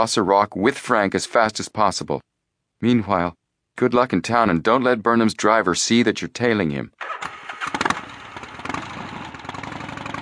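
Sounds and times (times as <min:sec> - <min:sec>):
speech: 0:00.0 - 0:07.4
motorcycle engine cranking and starting: 0:07.0 - 0:10.2.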